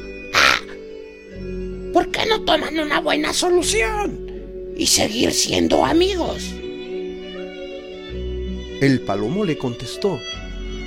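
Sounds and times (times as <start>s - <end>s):
crow cawing: 0.3s - 0.8s
speech: 2.0s - 4.2s, 4.8s - 6.6s, 8.8s - 10.4s.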